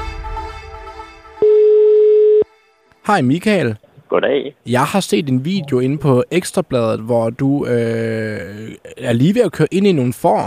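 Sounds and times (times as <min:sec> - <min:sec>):
loud steady beep: 0:01.4 - 0:02.5
telephone line tone: 0:01.4 - 0:02.5
speech: 0:03.1 - 0:10.4.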